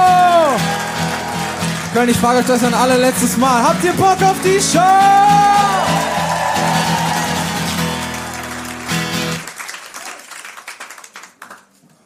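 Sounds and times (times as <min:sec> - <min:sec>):
music playing: 0:00.0 - 0:09.5
crowd applauding loudly: 0:00.0 - 0:12.0
speech: 0:02.0 - 0:06.0.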